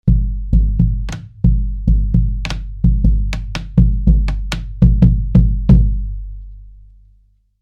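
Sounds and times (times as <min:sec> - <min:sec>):
bombo bass drum: 0:00.0 - 0:06.4.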